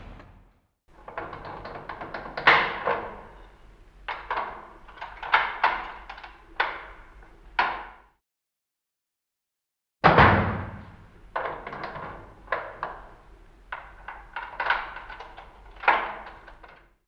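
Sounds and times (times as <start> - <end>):
prison locks and bolts opening: 0.9 - 8.0, 10.8 - 17.0.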